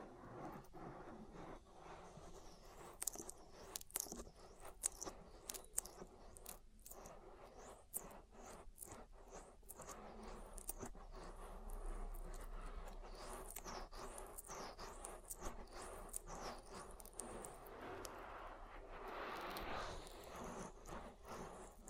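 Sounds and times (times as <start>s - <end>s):
oily ear massage rubbing and squelching: 0.4s - 21.8s
steady low rumble: 10.1s - 20.1s.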